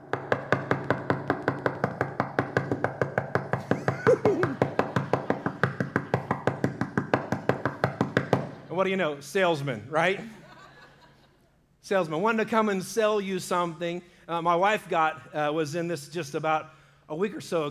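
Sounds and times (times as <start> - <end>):
rapid firm knocking on the door of a home: 0.0 - 8.5
laughter: 3.7 - 4.6, 10.1 - 11.5
speech: 8.8 - 10.4, 11.9 - 17.6.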